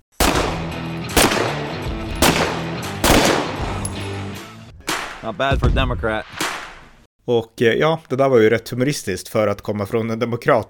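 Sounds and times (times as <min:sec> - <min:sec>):
gunshots at a shooting range: 0:00.2 - 0:03.8, 0:04.8 - 0:06.9
speech: 0:05.2 - 0:06.4, 0:07.2 - 0:10.6.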